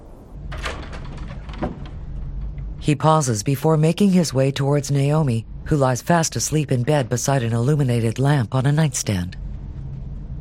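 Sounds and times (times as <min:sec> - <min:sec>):
low rumble: 0:00.0 - 0:10.3
double doors into a dim master bedroom sliding open: 0:00.4 - 0:02.6
speech: 0:02.9 - 0:09.4.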